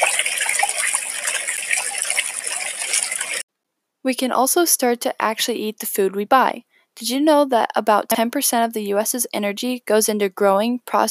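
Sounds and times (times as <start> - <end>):
water running from a faucet: 0.0 - 3.4
speech: 4.0 - 11.1.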